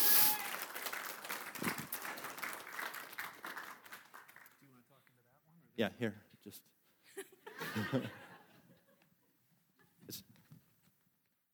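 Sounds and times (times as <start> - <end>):
audience clapping: 0.0 - 4.8
speech: 5.8 - 8.3
laughter: 7.2 - 9.0.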